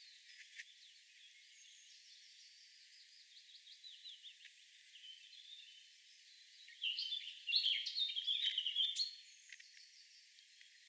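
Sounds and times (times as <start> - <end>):
Eurasian blackcap Sylvia atricapilla song: 0.0 - 10.8.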